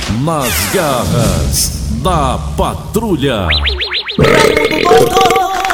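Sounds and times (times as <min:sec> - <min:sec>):
speech: 0:00.2 - 0:05.4
short whooping siren-like sound effect: 0:00.4 - 0:01.0, 0:03.5 - 0:05.6
loud drawn-out burp: 0:04.2 - 0:05.6.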